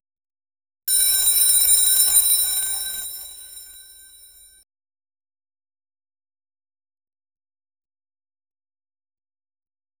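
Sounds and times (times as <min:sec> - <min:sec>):
school bell ringing: 0:00.9 - 0:04.6.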